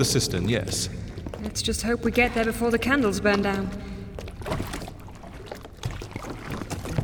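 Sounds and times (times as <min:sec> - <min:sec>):
speech: 0:00.0 - 0:04.7
oars of a small firefighters' rowboat on a cistern lake in Paris: 0:00.0 - 0:07.0
trickling drips: 0:00.0 - 0:07.0.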